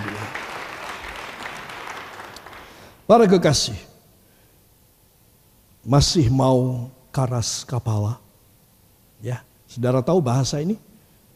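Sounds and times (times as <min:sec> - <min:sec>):
crowd applauding: 0:00.0 - 0:03.0
speech: 0:03.1 - 0:03.9, 0:05.9 - 0:08.2, 0:09.2 - 0:10.9.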